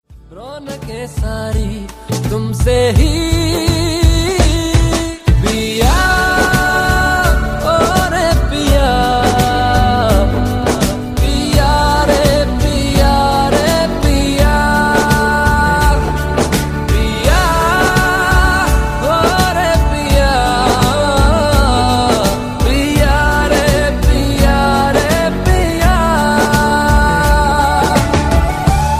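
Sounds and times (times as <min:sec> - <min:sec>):
background music for ringtones: 0:00.0 - 0:28.9.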